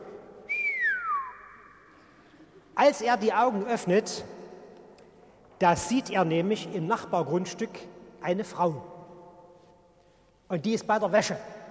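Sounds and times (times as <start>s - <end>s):
appreciative whistle from a person: 0.5s - 2.0s
speech: 2.8s - 4.4s, 5.6s - 8.9s, 10.5s - 11.6s.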